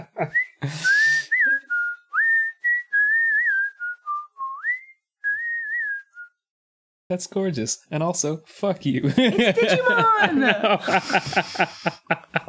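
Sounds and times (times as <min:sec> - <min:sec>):
laughter: 0:00.0 - 0:00.9, 0:09.0 - 0:12.4
speech: 0:00.2 - 0:01.0, 0:07.1 - 0:12.4
person whistling a short melody: 0:00.3 - 0:06.4.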